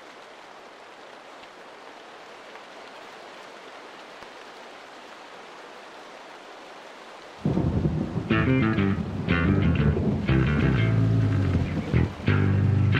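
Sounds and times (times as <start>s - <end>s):
thunderstorm rain: 0.0s - 12.9s
thunderstorm thunder rumble: 7.4s - 12.9s.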